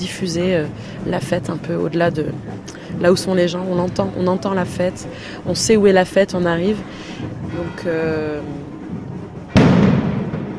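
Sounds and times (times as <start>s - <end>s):
speech: 0.0s - 8.7s
noon cannon fired without a real cannonball at a festive gathering: 9.5s - 10.5s.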